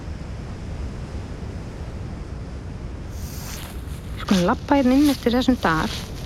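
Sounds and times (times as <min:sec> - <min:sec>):
distant waterfall rushing: 0:00.0 - 0:06.2
brief hiss of higher noise: 0:03.1 - 0:04.5
speech: 0:04.3 - 0:06.1.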